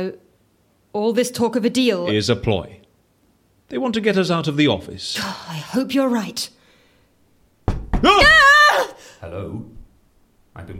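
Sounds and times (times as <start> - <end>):
speech: 0.0 - 0.2, 0.9 - 2.8, 3.7 - 6.6, 8.0 - 8.5, 9.2 - 9.8, 10.6 - 10.7
knocking on a door: 7.6 - 8.4
person calling out loudly: 8.0 - 9.0.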